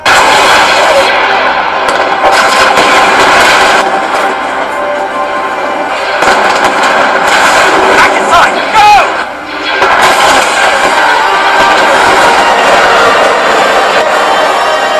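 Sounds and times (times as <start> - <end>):
heavy gunfire: 0.0 - 4.6, 5.9 - 14.8.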